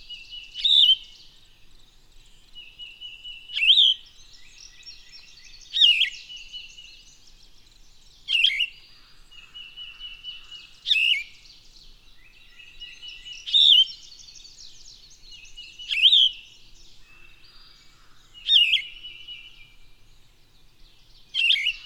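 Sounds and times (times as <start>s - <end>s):
bird song whistled phrases: 0.0s - 1.2s, 2.6s - 7.2s, 8.2s - 11.6s, 12.2s - 16.7s, 18.4s - 19.8s, 21.3s - 21.8s.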